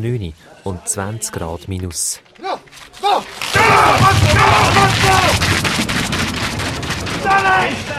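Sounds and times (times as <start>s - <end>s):
speech: 0.0s - 6.0s, 7.2s - 7.9s
men yelling and grunting: 2.4s - 5.4s
scraping bobsleigh runners at the start: 2.7s - 7.9s
pounding steps of a bobsleigh crew: 3.3s - 7.9s.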